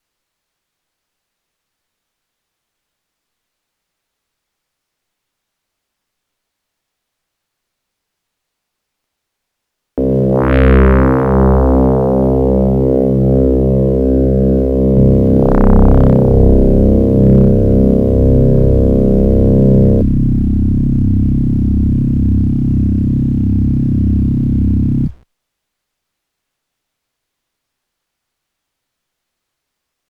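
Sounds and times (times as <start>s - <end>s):
sound chip DAC tones: 10.0s - 25.2s.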